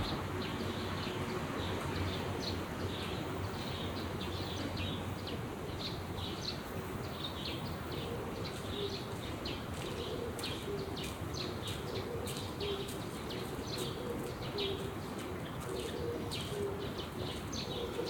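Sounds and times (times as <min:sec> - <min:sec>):
steady wash of traffic: 0:00.0 - 0:18.0
pigeons cooing in a weekday park: 0:07.9 - 0:09.0, 0:10.0 - 0:11.1, 0:11.7 - 0:12.9, 0:13.6 - 0:14.9, 0:15.7 - 0:18.0.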